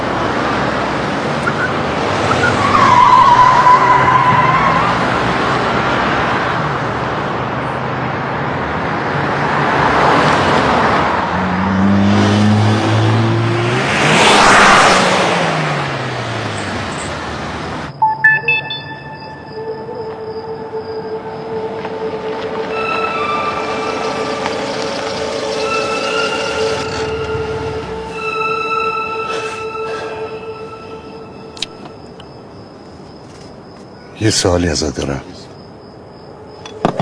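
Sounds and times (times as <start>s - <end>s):
road noise: 0.0s - 37.0s
car driving past: 9.3s - 17.9s, 19.5s - 32.0s
speech: 34.3s - 35.4s.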